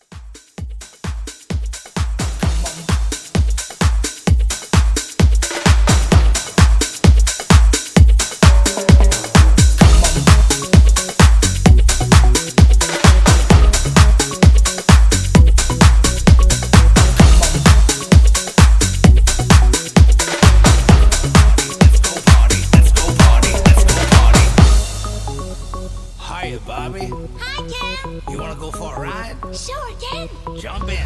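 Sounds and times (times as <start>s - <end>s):
90s pop drum beat: 0.0s - 26.4s.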